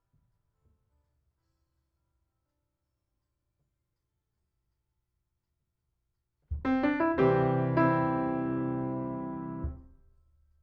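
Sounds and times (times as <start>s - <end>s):
piano: 6.5s - 10.0s.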